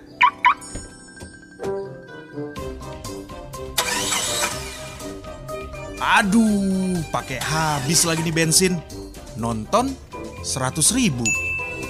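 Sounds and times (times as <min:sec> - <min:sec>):
car alarm electronic chirps: 0:00.0 - 0:01.9
car engine cranking and running: 0:03.0 - 0:08.7
speech: 0:06.0 - 0:11.4.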